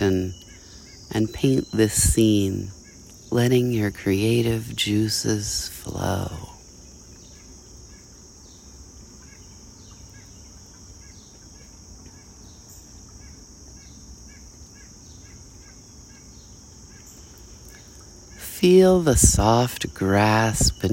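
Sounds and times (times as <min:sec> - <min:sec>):
speech: 0:00.0 - 0:00.4, 0:01.1 - 0:06.5, 0:18.6 - 0:20.9
birds chirping in short repeated calls: 0:00.0 - 0:20.9
high-pitched insect drone: 0:00.0 - 0:20.9.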